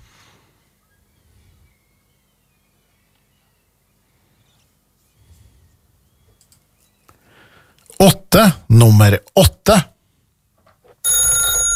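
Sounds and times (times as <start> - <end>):
speech: 8.0 - 9.9
telephone ringing: 11.0 - 11.7.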